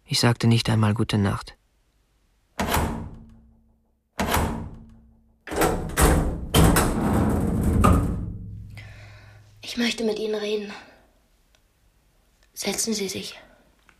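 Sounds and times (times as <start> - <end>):
speech: 0.1 - 1.6, 9.8 - 10.9, 12.6 - 13.5
door closing with heavy thuds: 2.6 - 3.4, 4.2 - 8.7
dense run of knocks and rumbling: 4.3 - 9.1.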